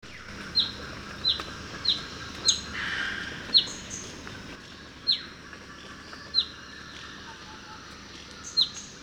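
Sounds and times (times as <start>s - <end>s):
Whistler's warbler Phylloscopus whistleri nemoralis in Ladakh: 0.0s - 5.3s, 8.4s - 9.0s.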